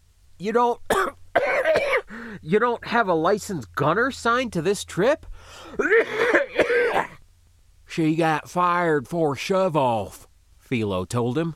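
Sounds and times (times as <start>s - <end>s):
speech: 0.4s - 1.2s, 1.8s - 7.1s, 7.9s - 11.5s
man coughing while jogging: 0.9s - 2.3s, 5.7s - 7.2s.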